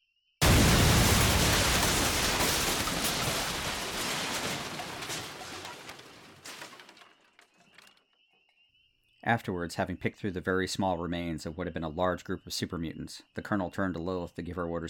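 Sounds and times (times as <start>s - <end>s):
explosion of a set of explosive charges: 0.4s - 6.7s
scattered crackles: 0.4s - 7.9s
speech: 9.3s - 14.8s.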